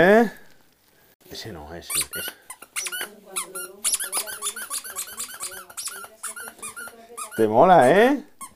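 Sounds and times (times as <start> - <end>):
speech: 0.0 - 0.4, 1.3 - 2.4, 7.4 - 8.3
rubber pet toy squeaking as a dog chews: 1.8 - 8.5.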